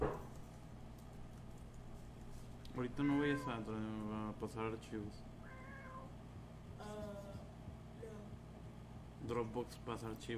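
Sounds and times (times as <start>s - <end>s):
low steady hum: 0.0s - 10.3s
speech: 2.8s - 5.4s, 9.3s - 10.3s
cat meowing: 2.9s - 3.7s, 5.4s - 6.1s.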